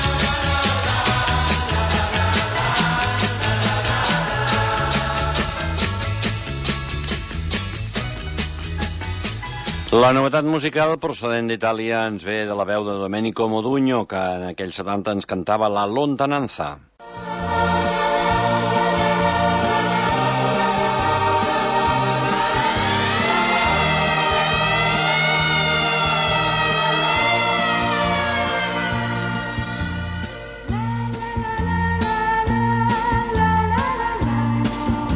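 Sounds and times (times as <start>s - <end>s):
instrumental backing music: 0.0s - 10.0s, 17.0s - 35.1s
speech: 10.0s - 17.8s
distant siren wailing: 22.6s - 30.6s.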